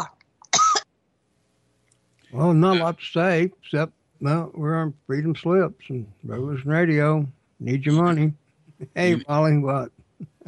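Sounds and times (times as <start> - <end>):
single short forceful cough: 0.5 - 0.9
speech: 2.3 - 10.3
laughter: 8.8 - 9.3.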